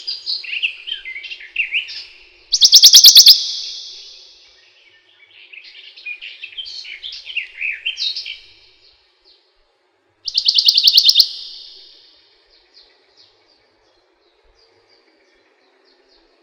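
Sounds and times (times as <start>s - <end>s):
another bird's jumbled chattering song: 0.0s - 8.5s, 10.3s - 13.4s
Western Bonelli's warbler singing a dry rattling trill: 2.5s - 4.4s, 10.3s - 12.0s.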